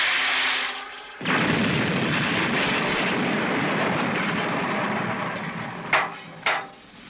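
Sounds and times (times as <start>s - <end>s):
airplane crashing into a forest: 1.2s - 6.5s.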